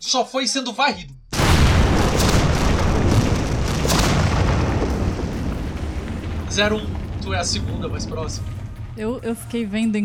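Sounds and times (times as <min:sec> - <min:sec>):
speech: 0:00.1 - 0:01.2, 0:06.6 - 0:10.0
explosion sound effect with rumbling roar and crackling debris: 0:01.3 - 0:09.3.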